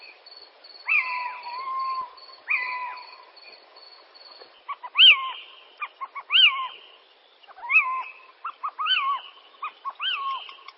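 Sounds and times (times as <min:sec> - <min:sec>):
little owl calling with mewing notes and yelps: 0:00.8 - 0:03.4, 0:04.6 - 0:10.7.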